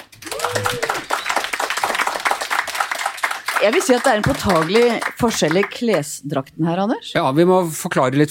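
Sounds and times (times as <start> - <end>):
audience applause: 0.0 - 6.0
speech: 3.6 - 8.2.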